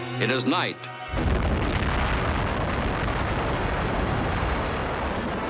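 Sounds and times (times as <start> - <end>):
speech: 0.2 - 1.4
atomic bomb test explosion roaring rumble: 1.1 - 5.4.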